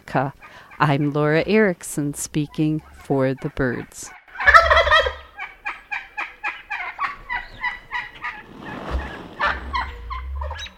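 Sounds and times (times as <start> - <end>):
speech: 0.1 - 4.2
Wild Turkey gobbling and yelping: 0.3 - 1.6, 2.4 - 10.7.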